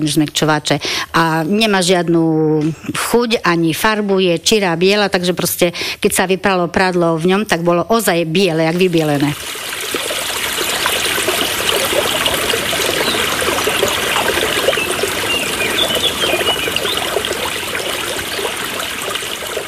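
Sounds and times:
speech: 0:00.0 - 0:09.7
spring water trickling over stones: 0:08.8 - 0:19.6.

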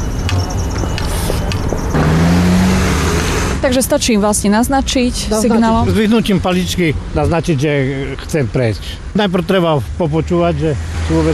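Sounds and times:
road traffic noise at a pedestrian crossing: 0:00.0 - 0:11.3
car passing by on the road: 0:00.4 - 0:03.8, 0:10.1 - 0:11.3
speech: 0:03.6 - 0:11.3.

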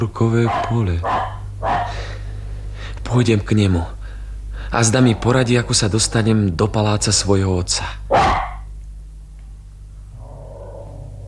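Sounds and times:
speech: 0:00.0 - 0:01.2, 0:03.1 - 0:04.0, 0:04.7 - 0:08.3
low rumble: 0:00.0 - 0:11.2
dog barking: 0:00.4 - 0:02.0, 0:08.1 - 0:08.7.

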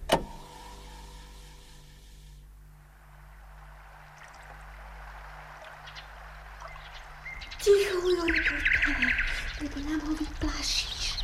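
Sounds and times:
low hum: 0:00.0 - 0:11.2
nightingale singing with bright trills and whistles: 0:03.2 - 0:11.2.

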